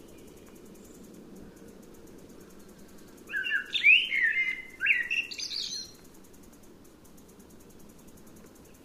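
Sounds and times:
low steady background noise: 0.0s - 8.8s
Eurasian blackbird singing: 3.3s - 6.0s.

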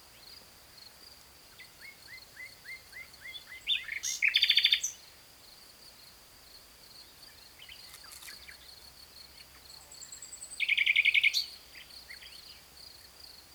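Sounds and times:
Common nightingale Luscinia megarhynchos song: 1.5s - 5.2s, 7.0s - 13.5s.

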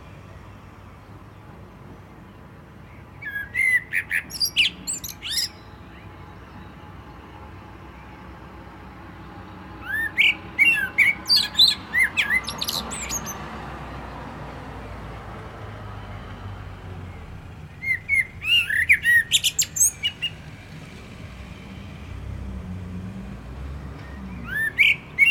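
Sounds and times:
common blackbird Turdus merula singing: 2.9s - 6.8s, 9.7s - 13.5s, 17.7s - 20.4s, 24.0s - 25.3s.

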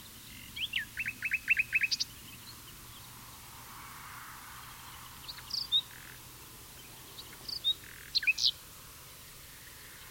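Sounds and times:
common nightingale Luscinia megarhynchos singing: 0.0s - 3.1s, 4.9s - 8.6s.

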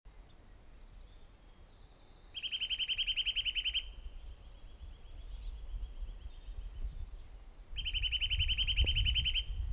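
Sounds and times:
Eurasian nuthatch Sitta europaea giving a fast trill: 2.4s - 4.0s, 7.8s - 9.6s.

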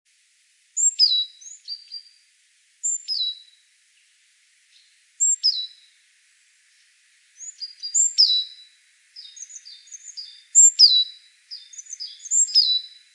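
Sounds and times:
great tit (Parus major) calls: 0.8s - 2.2s, 2.8s - 3.6s, 4.7s - 6.0s, 6.9s - 13.1s.

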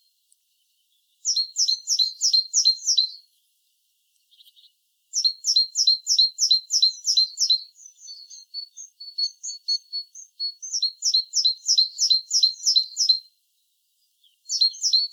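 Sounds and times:
great tit Parus major calls: 1.2s - 3.2s, 4.2s - 13.2s, 14.2s - 15.1s.

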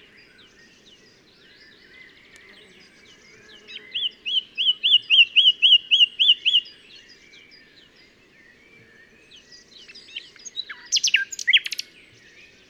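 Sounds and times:
Common nightingale Luscinia megarhynchos singing: 3.6s - 7.0s, 9.8s - 12.0s.

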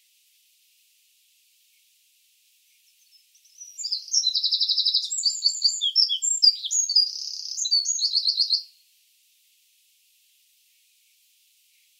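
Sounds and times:
Eurasian wren song: 2.7s - 8.8s.

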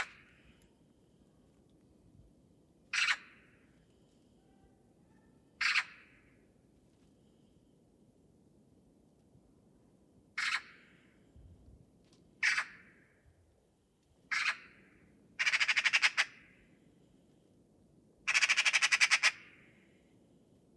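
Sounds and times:
Eurasian magpie Pica pica giving harsh scratchy calls and rattling chatter: 2.9s - 3.5s, 5.6s - 6.4s, 10.4s - 10.9s, 12.4s - 12.9s, 14.3s - 14.8s, 15.4s - 16.6s, 18.3s - 19.7s.

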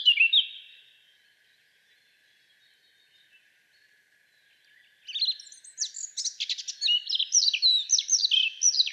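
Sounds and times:
Eurasian blackcap singing: 0.0s - 0.8s, 5.1s - 8.9s.

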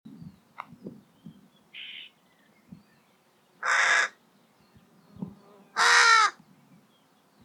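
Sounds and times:
carrion crow Corvus corone cawing: 3.6s - 4.2s, 5.8s - 6.4s.

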